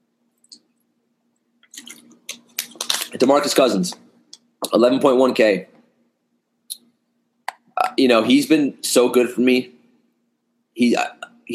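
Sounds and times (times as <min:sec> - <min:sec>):
faint steady hum: 0:00.0 - 0:11.5
person sipping water: 0:01.6 - 0:02.7
speech: 0:03.1 - 0:04.0, 0:04.7 - 0:05.7, 0:08.0 - 0:09.8, 0:10.8 - 0:11.5.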